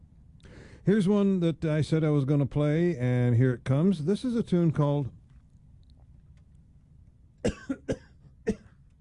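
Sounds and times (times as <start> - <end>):
speech: 0.8 - 5.2, 7.4 - 8.6
person coughing: 7.4 - 8.8.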